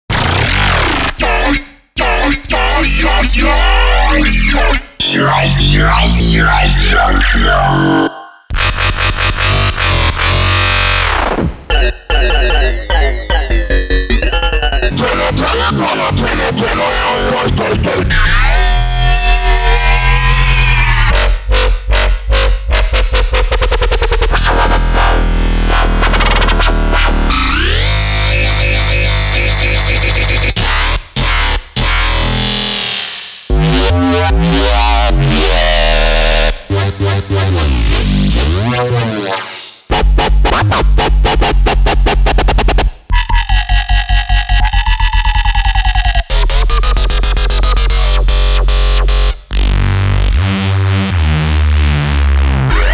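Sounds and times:
Phase Plant synth bass: 0.1 - 52.9.

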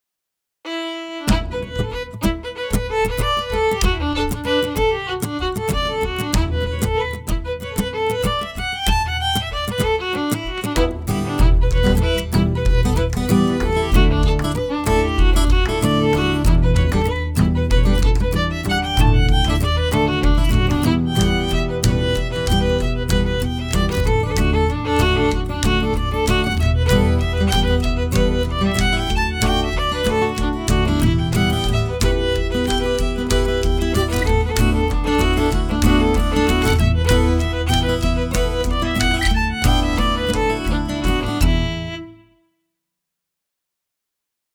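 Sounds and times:
fiddle playing a reel: 0.7 - 42.2.

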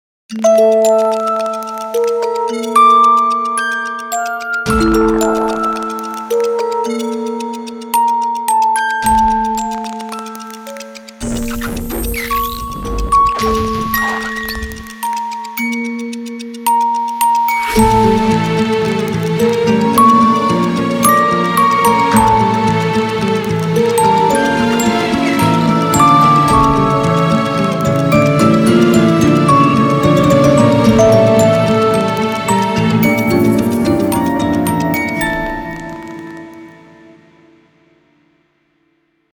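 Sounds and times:
music box: 0.3 - 37.6.

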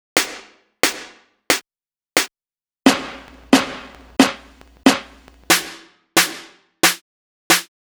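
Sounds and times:
snare drum: 0.2 - 1.6, 2.9 - 7.7.

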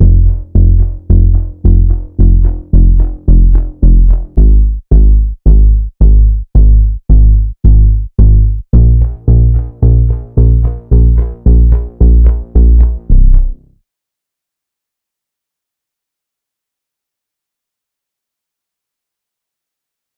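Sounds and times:
bouncing plucked bass: 0.0 - 13.7.

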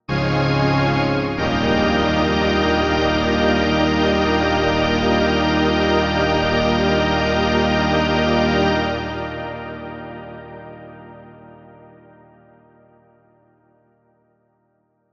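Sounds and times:
strings with hall reverb: 0.1 - 11.7.

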